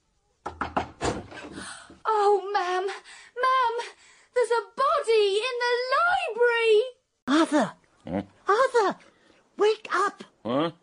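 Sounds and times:
frantic banging on a bedroom door: 0:00.4 - 0:01.4
speech: 0:01.6 - 0:10.8.

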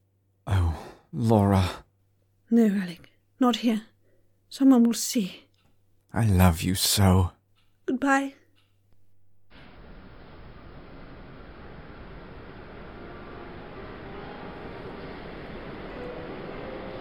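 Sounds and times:
speech: 0:01.1 - 0:01.8, 0:02.5 - 0:03.9, 0:04.5 - 0:05.4, 0:06.1 - 0:08.4
train rumbling at a station platform: 0:09.5 - 0:16.9.

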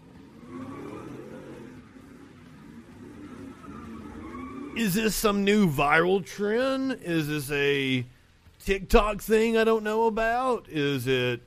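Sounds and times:
car engine revving while doing donuts in an intersection in New Orleans: 0:00.0 - 0:05.8
thin whine of spinning tires as the car does donuts: 0:00.0 - 0:08.6
speech: 0:04.8 - 0:11.4.

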